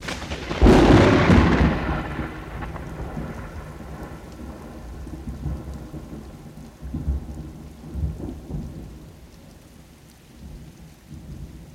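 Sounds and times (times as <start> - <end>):
thunder crack: 0.0 - 8.8.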